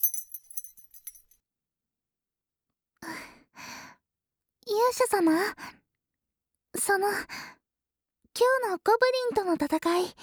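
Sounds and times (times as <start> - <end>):
room key jingling as it is handed over: 0.0 - 1.3
speech: 4.9 - 5.8, 6.9 - 7.5, 8.4 - 10.2.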